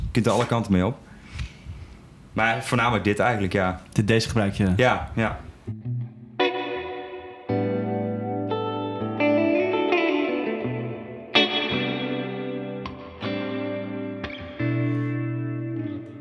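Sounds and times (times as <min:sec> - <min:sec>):
speech: 0:00.2 - 0:01.1, 0:02.4 - 0:05.8
sustained electric guitar chords through a reverb pedal on shimmer setting: 0:05.7 - 0:16.1.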